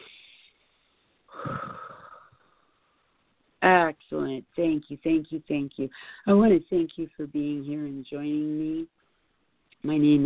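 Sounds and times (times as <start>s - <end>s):
group taking a big deep breath during a guided meditation: 1.3s - 2.8s
speech: 3.9s - 9.0s, 9.8s - 10.2s.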